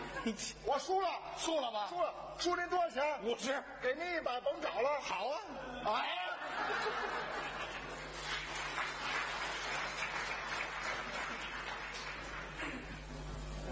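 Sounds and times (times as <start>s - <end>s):
laughter: 0.0s - 0.6s, 5.5s - 8.2s
speech: 0.2s - 7.5s
audience applauding: 6.8s - 13.7s.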